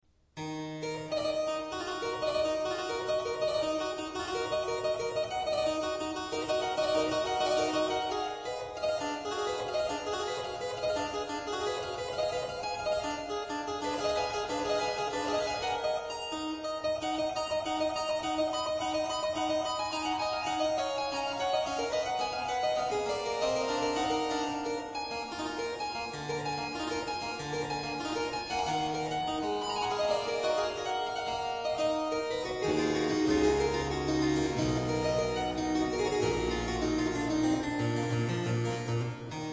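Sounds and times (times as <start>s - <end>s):
harpsichord piece: 0.4s - 39.5s.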